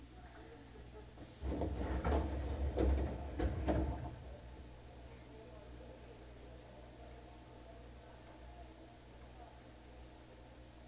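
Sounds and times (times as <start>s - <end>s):
steady low rumble of the subway carriage: 0.0s - 10.3s
subway train doors opening with clunks and sliding thumps: 1.2s - 4.5s.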